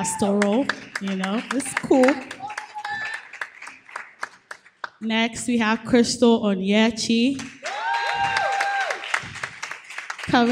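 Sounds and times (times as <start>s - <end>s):
voices cheering: 0.0s - 0.7s, 1.5s - 3.4s, 7.6s - 9.2s
speech: 0.0s - 2.4s, 5.0s - 7.6s, 10.3s - 10.5s
audience clapping at an event: 0.0s - 5.0s, 7.3s - 10.5s.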